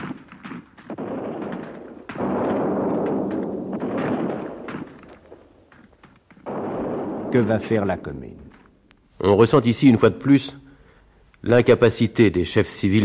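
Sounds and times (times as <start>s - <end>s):
continuous crackling rifle fire with rapid irregular shots: 0.0s - 8.8s
dull heavy cannon booms: 0.9s - 8.8s
speech: 7.3s - 8.5s, 9.2s - 10.6s, 11.4s - 13.0s.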